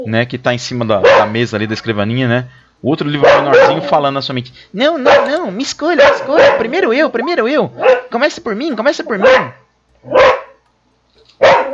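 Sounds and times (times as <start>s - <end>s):
speech: 0.0s - 10.4s
dog barking sound effect: 1.0s - 1.4s, 3.2s - 3.9s, 5.0s - 5.4s, 6.0s - 6.8s, 7.8s - 8.1s, 9.2s - 10.6s, 11.4s - 11.7s.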